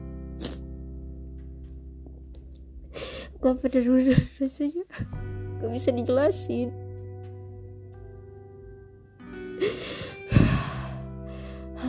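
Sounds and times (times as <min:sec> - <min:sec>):
heavy breaths: 0:02.9 - 0:03.4, 0:09.6 - 0:11.8
speech: 0:03.4 - 0:06.8.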